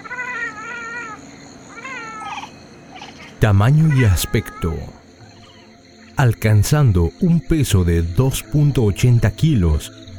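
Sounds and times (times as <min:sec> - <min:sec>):
leopard cat giving wavering meow-like calls: 0:00.0 - 0:05.7
speech: 0:03.4 - 0:05.0, 0:06.2 - 0:10.1.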